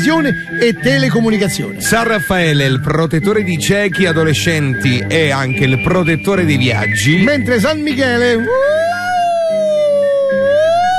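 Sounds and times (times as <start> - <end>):
speech: 0.0 - 9.1
siren wailing: 8.3 - 10.9.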